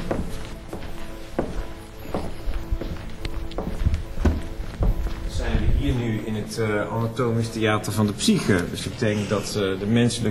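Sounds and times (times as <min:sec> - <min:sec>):
footsteps walking across a hard floor toward a scale model: 0:00.0 - 0:06.2
speech: 0:05.8 - 0:10.3.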